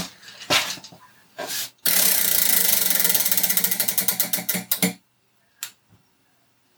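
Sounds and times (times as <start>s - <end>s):
prize wheel spinning and ticking: 1.9s - 5.0s.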